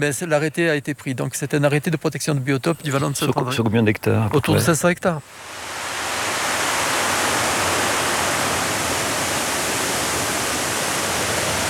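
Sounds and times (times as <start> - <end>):
speech: 0.0 - 5.7
flowing water of a river in the Vallon de Saint-André: 5.3 - 11.6.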